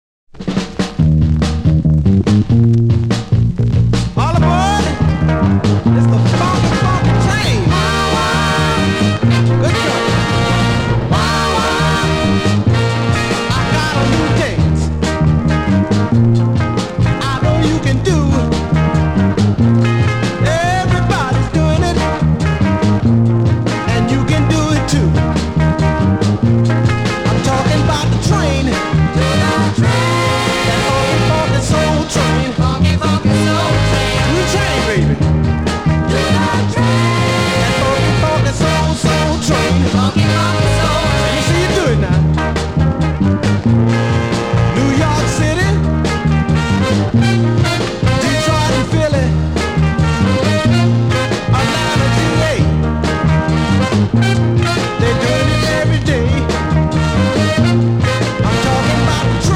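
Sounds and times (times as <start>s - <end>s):
funk soul music: 0.4s - 59.5s.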